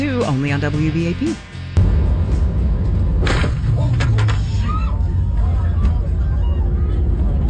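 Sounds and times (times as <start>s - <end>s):
speech: 0.2s - 1.6s
sharp thuds and bangs of plane striking a pedestrian: 1.8s - 4.6s
airplane cabin rumble: 1.8s - 7.4s
voices murmuring: 3.8s - 7.4s.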